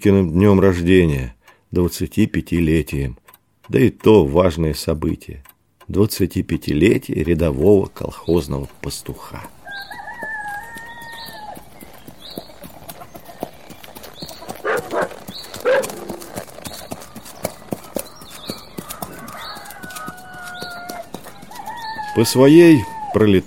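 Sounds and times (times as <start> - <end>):
speech: 0.0 - 10.0, 22.2 - 23.4
birds calling: 6.0 - 23.4
horse hooves trotting: 6.6 - 23.4
rooster crowing: 9.6 - 11.6, 18.7 - 23.2.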